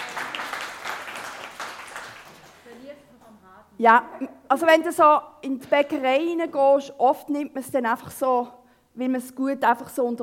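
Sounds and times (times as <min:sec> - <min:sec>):
applause of many hands clapping: 0:00.0 - 0:02.9
speech: 0:03.8 - 0:10.2.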